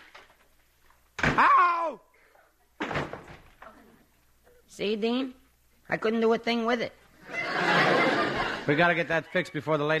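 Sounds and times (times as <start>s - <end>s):
person yelping while falling: 1.3s - 2.1s
speech: 1.4s - 2.1s, 4.7s - 7.0s, 8.7s - 9.9s
apartment front door banging open: 2.8s - 3.6s
person slipping on a throw rug and falling to the floor: 2.8s - 3.7s
laughter: 7.2s - 9.9s.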